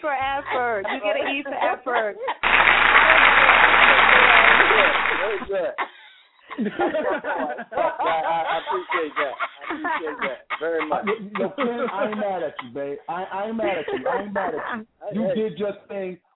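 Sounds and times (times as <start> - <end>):
speech: 0.0 - 3.8, 5.2 - 5.9, 6.6 - 16.3
people laughing: 0.0 - 16.1
applause: 2.4 - 5.5.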